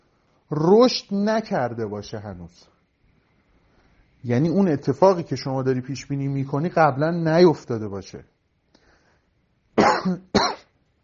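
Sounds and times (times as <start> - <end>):
speech: 0.5 - 2.7, 4.2 - 8.3, 10.0 - 10.5
person coughing harshly: 9.8 - 10.8.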